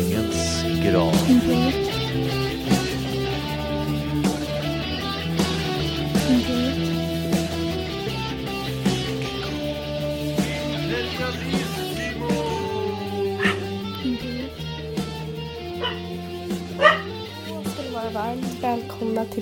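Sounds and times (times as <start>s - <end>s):
steady sustained musical bed: 0.0s - 19.4s
laughter: 0.1s - 6.9s, 10.3s - 14.8s
speech: 0.8s - 2.5s
small dog barking: 13.4s - 13.8s, 15.8s - 16.1s, 16.7s - 17.2s.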